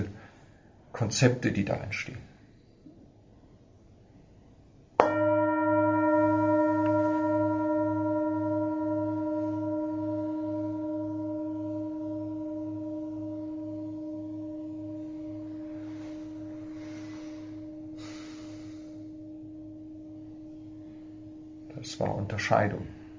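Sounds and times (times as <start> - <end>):
speech: 1.0 - 2.3, 22.5 - 22.9
singing bowl struck and ringing in a Buddhist centre: 5.0 - 23.1.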